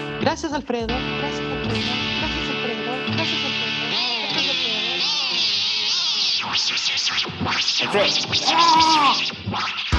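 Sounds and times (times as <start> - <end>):
speech: 0.2 - 4.1, 6.5 - 9.8
distorted psychedelic audio glitch of warbling sweeping tones and scratchy noise: 3.2 - 9.6.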